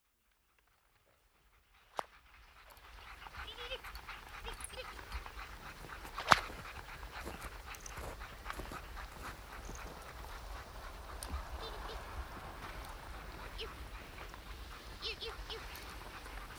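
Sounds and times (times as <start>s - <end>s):
team of sled dogs pulling a sledge panting and yelping: 0.8s - 16.5s
sled dog sharp barks: 3.2s - 16.5s.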